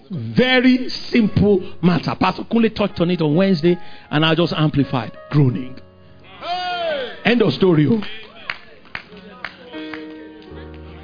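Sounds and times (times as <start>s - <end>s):
speech: 0.1s - 6.6s, 7.2s - 8.2s
about five people clapping during a sermon: 7.9s - 11.0s.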